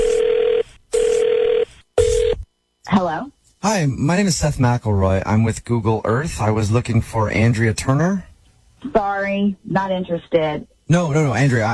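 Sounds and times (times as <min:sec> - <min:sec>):
telephone ringing in short electronic bursts: 0:00.0 - 0:02.4
speech: 0:02.9 - 0:11.7.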